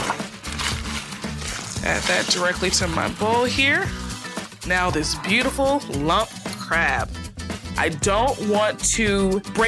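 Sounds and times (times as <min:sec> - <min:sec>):
butter crackers being crushed inside a sealed bag: 0:00.1 - 0:02.3
speech: 0:01.9 - 0:04.0, 0:04.6 - 0:07.2, 0:07.8 - 0:09.6.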